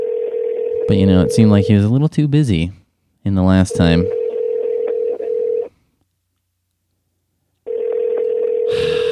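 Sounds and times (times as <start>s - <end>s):
phone's ringback tone: 0.0s - 1.8s, 3.7s - 5.7s, 7.7s - 9.0s
speech: 0.9s - 4.2s.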